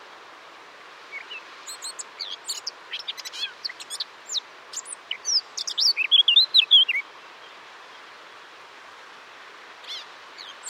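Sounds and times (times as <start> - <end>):
Eurasian blackcap Sylvia atricapilla song of chattering notes and fluty whistles: 1.1 - 7.0.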